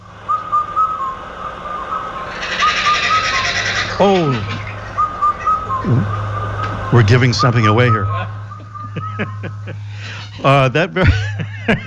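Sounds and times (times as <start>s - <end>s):
steady low hum: 0.0s - 11.8s
Indian cuckoo song, a clear whistled four-note phrase: 0.2s - 3.5s, 4.8s - 9.8s
speech: 4.0s - 4.6s, 5.8s - 6.2s, 6.9s - 8.1s, 10.4s - 11.8s
laughter: 4.0s - 11.8s.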